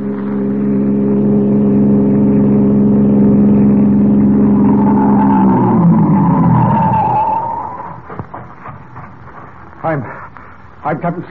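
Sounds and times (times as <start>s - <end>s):
passing car engine humming on a road: 0.0s - 10.8s
car tires squealing in a skid while braking: 4.2s - 8.8s
speech: 11.0s - 11.2s.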